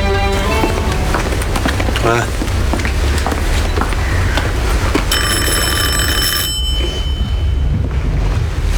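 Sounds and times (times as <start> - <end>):
steady noise: 0.0 - 8.7
speech: 2.1 - 2.4
electronic doorbell ringing at the door: 5.1 - 7.9.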